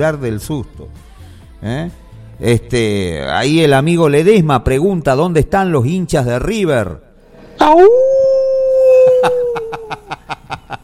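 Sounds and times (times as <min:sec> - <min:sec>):
speech: 0:00.0 - 0:07.0, 0:07.6 - 0:08.0
wolf howling: 0:07.6 - 0:10.0
laughter: 0:09.0 - 0:10.8.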